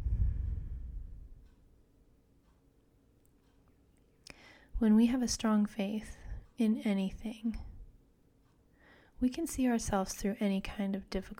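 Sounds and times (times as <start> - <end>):
slow deep exhale: 0.0 - 1.3
speech: 4.8 - 7.7, 9.2 - 11.3.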